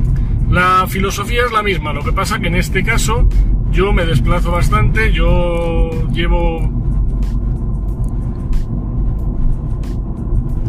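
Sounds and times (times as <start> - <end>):
engine rumble inside a moving car cabin: 0.0 - 10.6
road noise of a moving car: 0.0 - 10.6
speech: 0.5 - 6.8.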